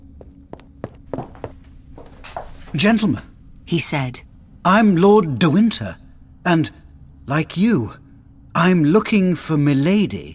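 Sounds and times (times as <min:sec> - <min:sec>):
footsteps of a man hurrying into a room: 0:00.0 - 0:02.8
low steady hum: 0:00.0 - 0:10.3
speech: 0:02.7 - 0:08.0, 0:08.6 - 0:10.3.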